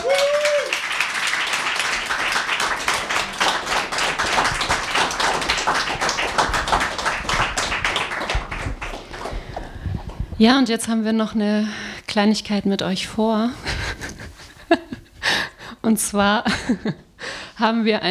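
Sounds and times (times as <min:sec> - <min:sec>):
brief whistle or cheer: 0:00.0 - 0:00.8
audience applause: 0:00.0 - 0:09.8
speech: 0:10.4 - 0:13.8, 0:15.9 - 0:18.0.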